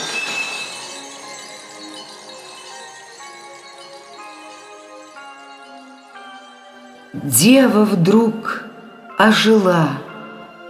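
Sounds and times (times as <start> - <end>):
crystal coffin smashing: 0.0 - 6.1
shimmering ringing tones and tinkling crystal shards: 0.0 - 7.1
speech: 7.1 - 8.6, 9.2 - 10.0.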